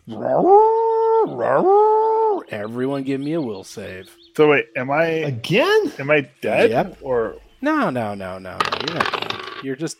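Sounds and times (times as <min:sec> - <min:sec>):
person imitating a creature's triumphant roar: 0:00.0 - 0:02.4
speech: 0:00.1 - 0:01.9, 0:02.5 - 0:09.9.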